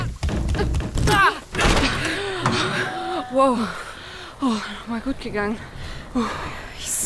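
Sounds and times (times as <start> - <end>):
stuck heavy door scraping and thudding as it is shoved open: 0.2 - 2.9
speech: 3.4 - 7.0.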